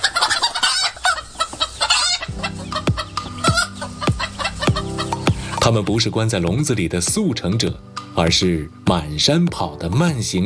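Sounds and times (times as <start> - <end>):
Three Gorges black chickens clucking and crowing: 0.0 - 5.6
speech: 5.7 - 10.4.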